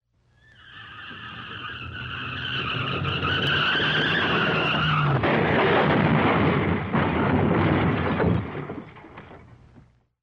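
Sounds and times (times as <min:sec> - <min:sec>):
car braking: 0:00.4 - 0:05.6
car crash: 0:01.3 - 0:09.6.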